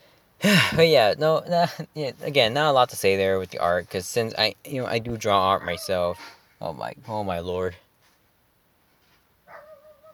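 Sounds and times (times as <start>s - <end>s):
speech: 0.4s - 7.8s
dog bark: 5.6s - 5.9s, 9.5s - 10.1s.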